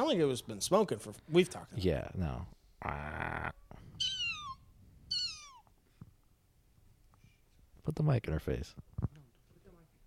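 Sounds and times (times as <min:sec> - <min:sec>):
speech: 0:00.1 - 0:04.1, 0:07.9 - 0:09.1
cat meowing raspily: 0:04.0 - 0:05.7.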